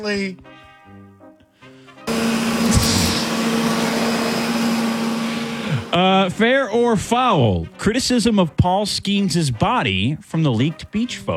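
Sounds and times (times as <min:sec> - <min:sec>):
speech: 0:00.0 - 0:00.5, 0:05.9 - 0:11.3
vacuum cleaner running: 0:02.1 - 0:06.6.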